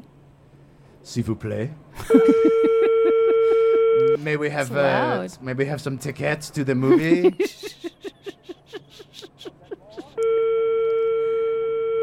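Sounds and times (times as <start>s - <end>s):
speech: 1.0s - 3.0s, 4.2s - 7.6s
laughter: 2.0s - 3.9s, 6.8s - 10.2s
European telephone ringing tone: 2.2s - 4.2s, 10.2s - 12.0s.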